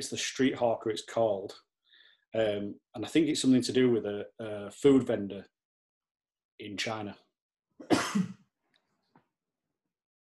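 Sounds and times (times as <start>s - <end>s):
speech: 0.0s - 1.7s, 2.3s - 5.5s, 6.6s - 7.2s, 7.8s - 8.4s
chesty cough from a person with a cough and cold: 7.8s - 8.4s.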